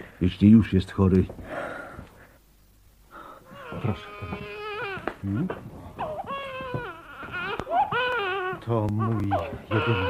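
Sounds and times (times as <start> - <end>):
speech: 0.2 - 1.7, 3.9 - 4.6, 5.2 - 5.8, 8.7 - 10.0
small child crying: 3.5 - 10.0.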